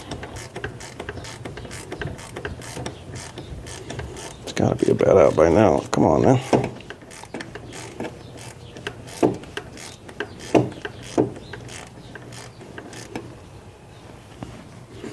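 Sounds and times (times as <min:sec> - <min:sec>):
ratchet wrench clicking on a loose car belt tensioner bolt: 0:00.1 - 0:04.4, 0:06.8 - 0:13.2
speech: 0:04.6 - 0:06.6.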